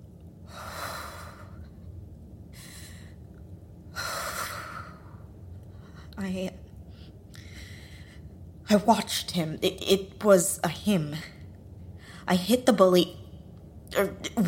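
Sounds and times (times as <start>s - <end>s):
low steady hiss: 0.0s - 14.4s
deep slow breathing: 0.4s - 1.9s, 2.5s - 6.2s, 6.9s - 8.5s
speech: 6.2s - 6.6s, 8.7s - 11.4s, 12.3s - 13.2s, 14.0s - 14.4s.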